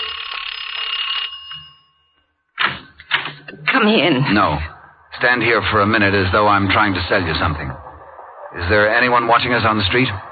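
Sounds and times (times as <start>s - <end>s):
doorbell ringing with a metallic jangle: 0.0s - 2.5s
speech: 3.8s - 7.8s, 8.5s - 10.3s.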